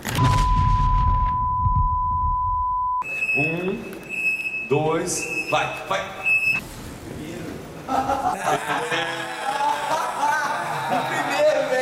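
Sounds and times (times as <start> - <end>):
steady electronic alarm tone: 0.2 - 6.6
speech: 3.4 - 3.9, 4.7 - 6.2, 7.9 - 9.3
laughter: 7.8 - 11.7.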